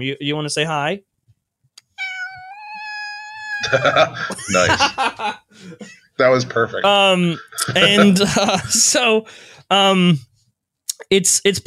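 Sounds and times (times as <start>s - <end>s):
speech: 0.0s - 1.1s, 3.6s - 10.3s, 11.0s - 11.6s
cat on a person's lap meowing: 1.8s - 3.8s
laughter: 3.6s - 6.1s, 7.2s - 9.0s.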